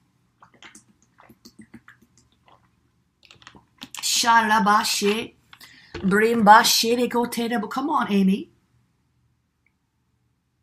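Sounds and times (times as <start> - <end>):
mouth clicks: 0.4 - 4.0
person sipping lukewarm coffee with slurps and swallows: 0.4 - 4.0
speech: 4.2 - 5.4, 6.0 - 8.5.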